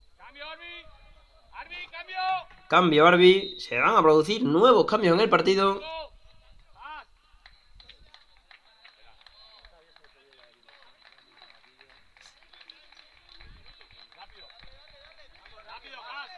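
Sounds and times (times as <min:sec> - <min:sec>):
speech: 0:00.3 - 0:06.0
modest crowd applauding in the stands at an amateur football match: 0:07.4 - 0:16.3.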